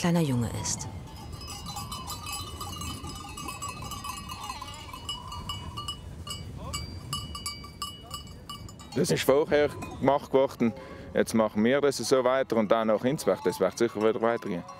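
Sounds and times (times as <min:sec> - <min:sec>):
speech: 0:00.0 - 0:01.0, 0:09.0 - 0:14.7
low rumble of goat herd movement: 0:00.5 - 0:09.0
goat herd bells clinking and clanging: 0:00.8 - 0:14.7
goats bleating: 0:04.2 - 0:05.2.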